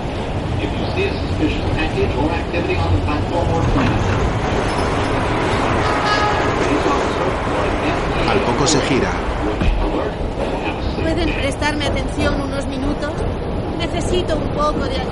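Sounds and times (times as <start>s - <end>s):
moving metro train carriage rumbling, wheels and running gear, heard from inside: 0.0s - 15.1s
speech: 0.6s - 15.1s.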